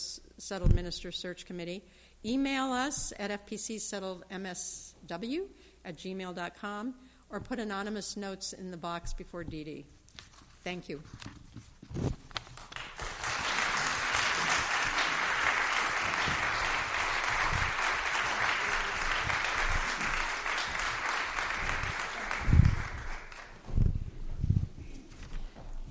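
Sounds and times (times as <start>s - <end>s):
speech: 0.0s - 10.0s, 10.6s - 12.2s
scattered thumps and shuffling: 10.2s - 12.6s, 23.6s - 25.9s
audience applauding for a ministerial candidate: 12.6s - 23.6s.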